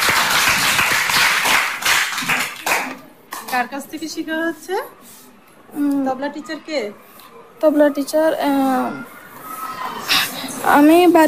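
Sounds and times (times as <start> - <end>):
audience clapping after a devotional song: 0.0 - 3.6
speech: 3.5 - 9.2, 10.6 - 11.2.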